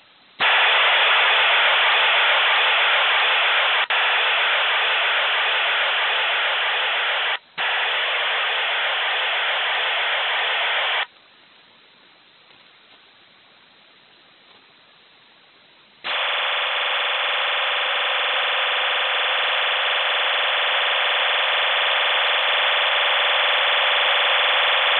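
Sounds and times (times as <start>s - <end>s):
Russian 3000 Bd serial tone waveform sending short bursts: 0.4s - 11.1s, 16.1s - 24.9s.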